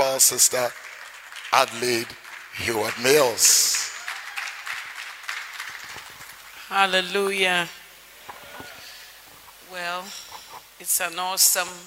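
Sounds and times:
audience applause: 0:00.0 - 0:06.7
speech: 0:00.2 - 0:00.9, 0:01.5 - 0:03.9, 0:06.7 - 0:07.8, 0:09.7 - 0:10.2, 0:10.8 - 0:11.8.

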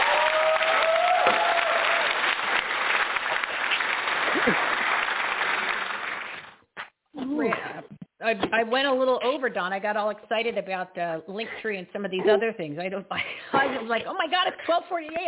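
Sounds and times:
cheers: 0:00.0 - 0:02.7
crowd clapping: 0:00.0 - 0:06.6
speech: 0:08.3 - 0:15.2.

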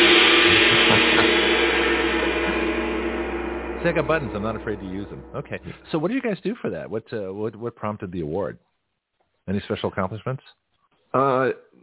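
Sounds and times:
gong ringing: 0:00.0 - 0:05.9
speech: 0:03.8 - 0:08.7, 0:09.5 - 0:11.8.

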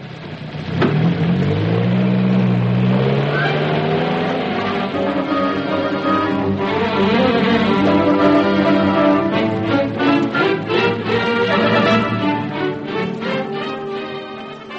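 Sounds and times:
car engine revving hard and accelerating away: 0:00.0 - 0:14.7.

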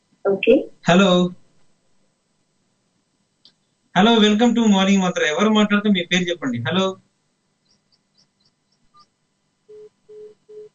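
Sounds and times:
speech: 0:00.2 - 0:01.4, 0:04.0 - 0:07.0
low telephone beeps after a call disconnects: 0:09.7 - 0:10.7.

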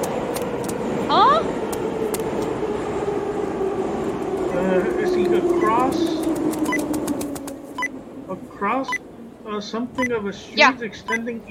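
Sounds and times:
train passing through a station: 0:00.0 - 0:10.5
speech: 0:04.7 - 0:06.8, 0:08.6 - 0:11.4.

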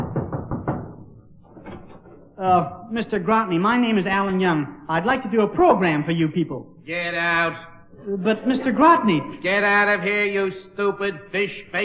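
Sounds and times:
knocking on an office door: 0:00.0 - 0:01.2
speech: 0:02.4 - 0:11.8.

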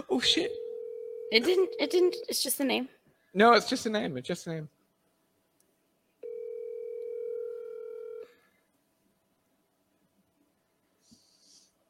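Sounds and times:
speech: 0:00.2 - 0:00.6, 0:01.3 - 0:04.8
ringback tone of an unanswered outgoing phone call: 0:00.5 - 0:02.3, 0:06.2 - 0:08.3
faint breath or sniff: 0:11.0 - 0:11.8.

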